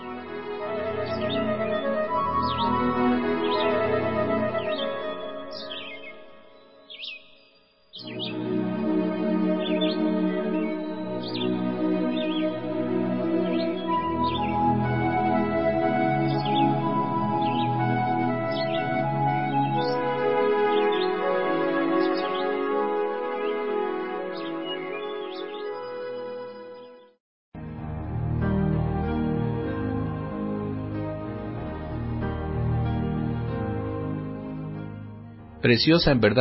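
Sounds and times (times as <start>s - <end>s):
sustained tonal music: 0.0s - 7.0s, 8.0s - 26.8s, 27.6s - 36.3s
birds chirping: 0.9s - 27.2s
speech: 35.6s - 36.3s.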